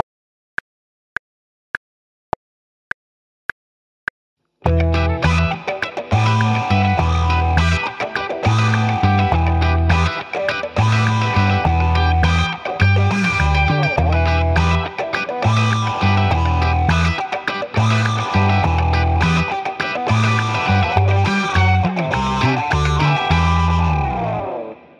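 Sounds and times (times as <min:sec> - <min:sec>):
improvised 8-bar funk rhythm: 0:04.7 - 0:24.6.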